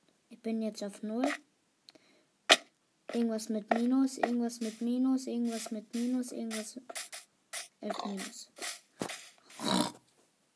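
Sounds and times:
speech: 0.4s - 1.5s, 3.1s - 7.0s, 7.8s - 8.5s
video game pig grunting: 7.9s - 8.2s, 9.5s - 10.0s.

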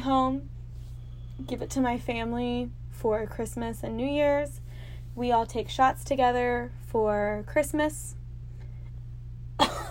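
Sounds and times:
speech: 0.0s - 0.6s, 1.4s - 4.6s, 5.2s - 8.2s, 9.6s - 9.8s
low steady hum: 0.0s - 9.8s
person coughing: 9.6s - 9.8s.

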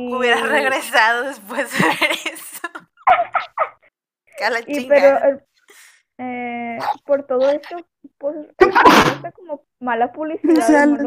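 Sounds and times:
speech: 0.0s - 2.5s, 4.4s - 5.5s, 6.2s - 11.0s
laughter: 0.1s - 3.9s
person sneezing: 8.6s - 9.3s.

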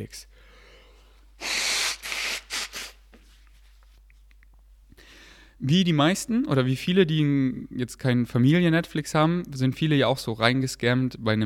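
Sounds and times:
speech: 0.0s - 0.4s, 5.6s - 11.4s
person blowing their nose: 1.4s - 3.1s.

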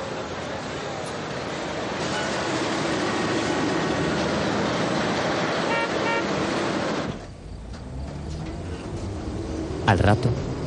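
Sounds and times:
city traffic noise: 0.0s - 10.6s
two trams rumbling along a wide busy avenue: 0.0s - 10.6s
speech: 9.9s - 10.5s.

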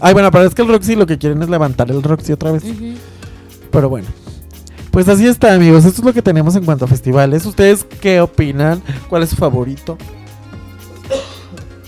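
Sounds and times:
speech: 0.0s - 3.1s, 3.7s - 4.2s, 5.0s - 10.2s
single short cough: 11.1s - 11.6s.

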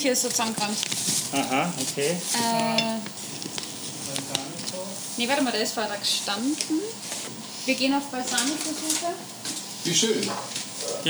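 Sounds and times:
speech: 0.0s - 3.6s, 5.2s - 11.0s
onions sizzling in hot olive oil in a pan: 2.2s - 3.2s.

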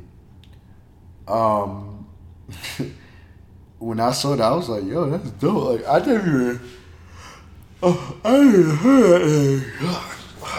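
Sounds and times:
speech: 1.3s - 1.9s, 2.5s - 3.0s, 3.8s - 6.8s, 7.8s - 10.2s
person yawning: 7.8s - 10.5s.

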